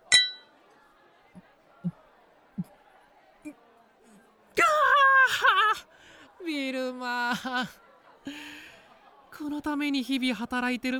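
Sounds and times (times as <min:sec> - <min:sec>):
glasses clinking together in a toast: 0:00.0 - 0:00.5
murmur of crowd chatter: 0:00.0 - 0:10.9
laughter: 0:04.6 - 0:06.1, 0:07.1 - 0:09.5
speech: 0:06.5 - 0:08.4, 0:09.4 - 0:10.9.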